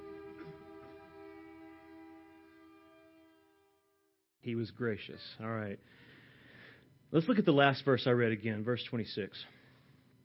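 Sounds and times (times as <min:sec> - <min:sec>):
train horn blaring: 0:00.0 - 0:04.1
speech: 0:04.4 - 0:06.0, 0:07.1 - 0:09.6.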